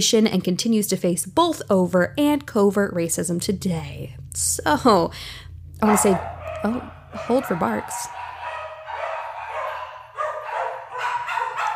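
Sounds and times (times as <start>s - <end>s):
speech: 0.0s - 8.2s
dogs barking in a house: 5.8s - 11.7s.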